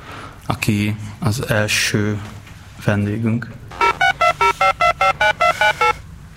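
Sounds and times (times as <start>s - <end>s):
speech: 0.7s - 3.8s
telephone dialing tones: 3.7s - 6.0s.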